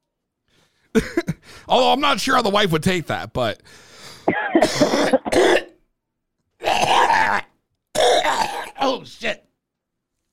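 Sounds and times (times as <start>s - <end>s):
heavy coughing fit with harsh hacking coughs: 1.0s - 1.4s, 4.3s - 5.8s, 6.6s - 7.4s, 8.0s - 8.8s
speech: 1.0s - 5.6s, 8.8s - 9.4s.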